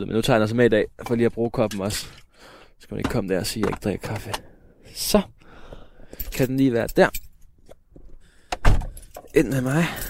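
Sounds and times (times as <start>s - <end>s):
speech: 0.0s - 5.4s, 6.3s - 7.2s, 9.3s - 10.0s
Suzuki Alto small car door opening and closing: 8.5s - 9.3s.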